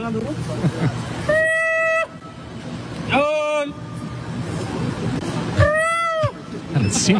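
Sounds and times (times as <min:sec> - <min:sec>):
people chattering: 0:00.0 - 0:02.9, 0:03.6 - 0:07.1
busy street noise: 0:00.0 - 0:07.1
speech: 0:00.1 - 0:01.4, 0:06.9 - 0:07.1
person imitating a macaque call with shrill whoops: 0:01.3 - 0:02.2, 0:05.6 - 0:06.4.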